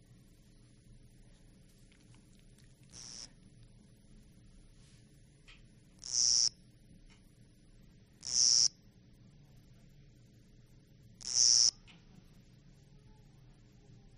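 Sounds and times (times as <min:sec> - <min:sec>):
low hum: 0:00.0 - 0:14.1
small kogata-korogi cricket chirping: 0:02.9 - 0:03.4, 0:06.0 - 0:06.6, 0:08.2 - 0:08.8, 0:11.2 - 0:11.8.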